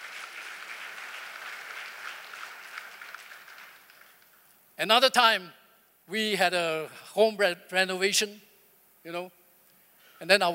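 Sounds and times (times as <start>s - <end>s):
crowd clapping at moderate distance: 0.0s - 4.4s
speech: 4.8s - 9.4s, 10.2s - 10.5s.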